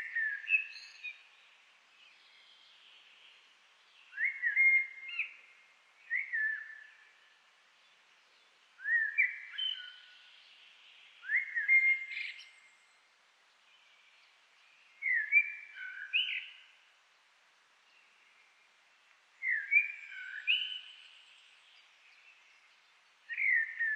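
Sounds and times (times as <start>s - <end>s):
common blackbird Turdus merula singing whistled song phrases: 0.0s - 1.2s, 4.1s - 7.1s, 8.8s - 10.3s, 11.2s - 12.7s, 15.0s - 16.7s, 19.4s - 21.3s, 23.3s - 23.9s.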